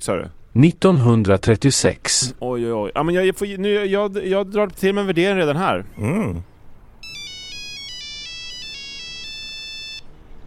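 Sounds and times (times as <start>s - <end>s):
speech: 0.0s - 6.5s
low hum: 0.0s - 10.4s
mobile phone ringtone with bright electronic melody: 7.0s - 10.1s.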